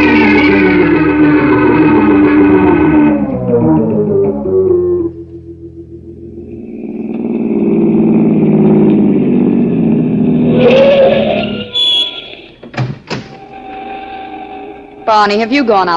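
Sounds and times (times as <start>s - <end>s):
car engine rumbling and accelerating: 0.0s - 11.8s
speech: 15.2s - 15.9s.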